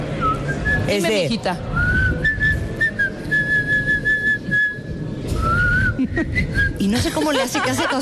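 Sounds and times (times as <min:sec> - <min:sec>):
speech: 0:00.9 - 0:01.7, 0:06.1 - 0:08.0
person whistling a warbling birdlike melody with trills: 0:01.8 - 0:06.8
laughter: 0:05.8 - 0:08.0.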